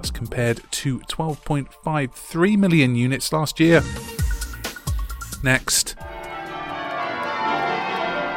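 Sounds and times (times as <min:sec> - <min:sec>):
speech: 0:00.0 - 0:04.1, 0:05.4 - 0:06.1
church bells ringing a peal: 0:06.1 - 0:08.3.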